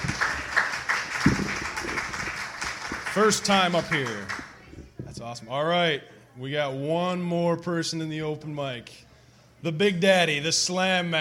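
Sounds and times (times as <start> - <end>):
audience applause: 0.0 - 4.7
speech: 3.2 - 4.4, 5.2 - 9.0, 9.6 - 11.1.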